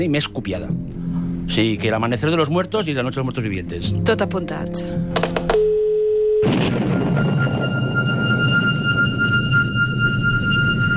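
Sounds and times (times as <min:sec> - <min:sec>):
speech: 0:00.0 - 0:05.4, 0:06.4 - 0:08.0
steady electronic tone: 0:06.4 - 0:10.9.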